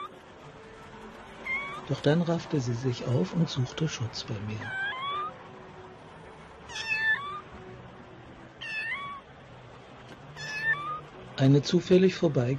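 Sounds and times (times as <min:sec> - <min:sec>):
small cat meowing in thin high-pitched cries: 0:01.4 - 0:01.9, 0:04.6 - 0:05.4, 0:06.7 - 0:07.5, 0:08.6 - 0:09.2, 0:10.4 - 0:11.1
speech: 0:01.9 - 0:04.9, 0:11.4 - 0:12.5.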